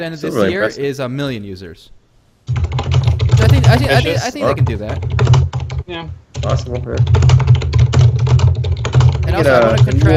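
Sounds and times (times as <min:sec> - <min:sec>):
speech: 0:00.0 - 0:02.7, 0:03.5 - 0:07.5, 0:09.3 - 0:10.1
rapid typing on a computer keyboard: 0:02.5 - 0:03.8, 0:04.6 - 0:10.1.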